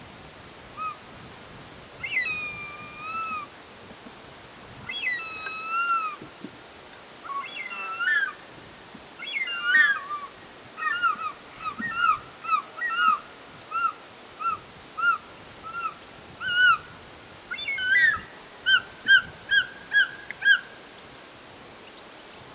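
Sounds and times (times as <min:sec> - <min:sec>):
Circaetus gallicus calling: 0:02.0 - 0:03.5, 0:04.9 - 0:06.2, 0:07.3 - 0:08.4, 0:09.2 - 0:16.9, 0:17.5 - 0:20.7.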